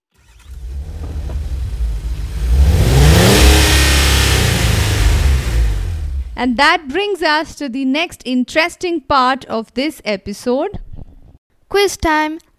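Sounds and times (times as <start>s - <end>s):
sports car engine revving as it accelerates: 0.1s - 6.7s
speech: 6.4s - 10.9s, 11.7s - 12.5s.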